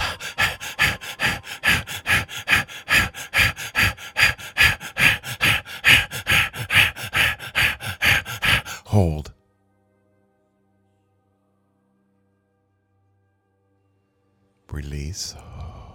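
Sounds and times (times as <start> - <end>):
forceful fast breathing: 0.0 - 9.3, 15.5 - 15.9
speech: 9.0 - 9.3, 15.1 - 15.8.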